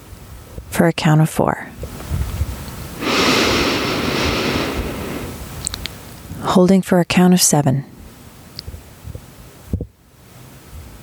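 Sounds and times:
speech: 0:00.8 - 0:01.8, 0:06.6 - 0:07.9
slow inhale through the nose during a breathing exercise: 0:03.0 - 0:05.6.

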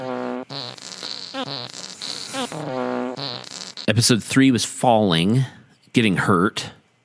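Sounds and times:
brassy buzzing fart noises: 0:00.0 - 0:04.0
speech: 0:03.9 - 0:06.8.

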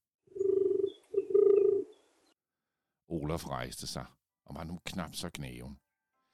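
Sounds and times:
dove cooing: 0:00.3 - 0:02.0
speech: 0:03.2 - 0:05.8.

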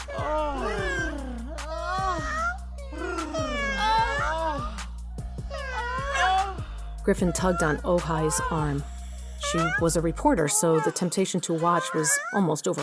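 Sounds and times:
female cats yowling in heat: 0:00.0 - 0:04.9, 0:05.5 - 0:08.8, 0:09.4 - 0:12.8
speech: 0:07.1 - 0:08.9, 0:09.5 - 0:12.8.

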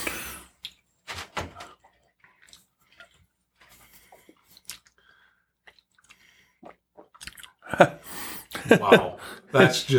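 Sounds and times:
person swishing and chewing a sip of bourbon: 0:01.8 - 0:08.6
speech: 0:07.7 - 0:09.9.

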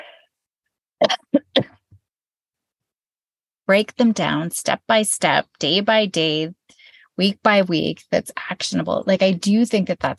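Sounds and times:
person coughing: 0:01.0 - 0:01.8
speech: 0:03.7 - 0:10.1.

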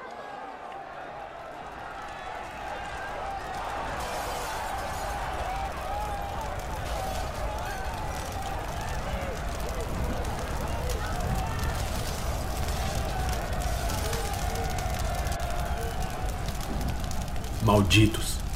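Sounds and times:
commotion: 0:00.1 - 0:18.5
large fire roaring with crackling and hissing flames: 0:00.1 - 0:18.5
speech: 0:17.7 - 0:18.4.

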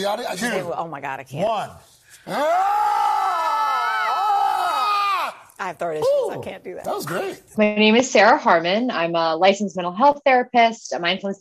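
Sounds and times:
speech: 0:00.0 - 0:03.1, 0:05.6 - 0:11.4
people screaming together: 0:02.3 - 0:05.5.

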